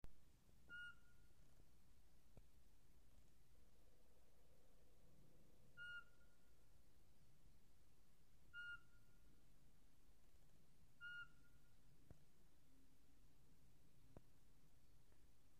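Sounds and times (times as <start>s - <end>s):
Eurasian pygmy owl: 0.7s - 1.2s, 5.8s - 6.4s, 8.5s - 9.1s, 11.0s - 11.6s.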